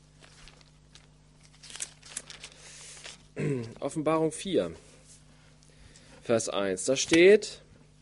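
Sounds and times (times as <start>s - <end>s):
low steady hum: 0.0s - 8.0s
Bible pages being flipped: 0.2s - 3.3s
speech: 3.4s - 4.9s, 6.3s - 7.6s.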